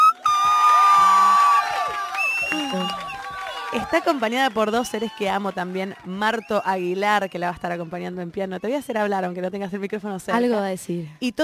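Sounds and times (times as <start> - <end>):
long piercing whistle: 0.0 - 3.6
scattered whoops and shouts: 0.0 - 4.1
audience cheering and applause: 0.0 - 8.9
speech: 3.8 - 11.4.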